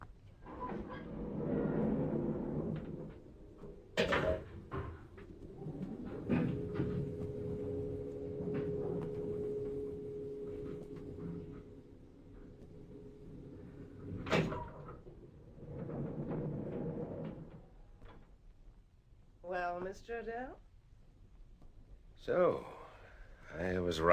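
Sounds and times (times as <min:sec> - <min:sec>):
self-operating lift doors sliding and clunking shut: 0:00.4 - 0:17.6
self-operating lift stopping with a sharp clunk: 0:04.0 - 0:15.1
self-operating lift car humming and rumbling as it travels up: 0:05.2 - 0:14.8
speech: 0:19.8 - 0:20.6, 0:22.3 - 0:22.7, 0:23.6 - 0:24.1.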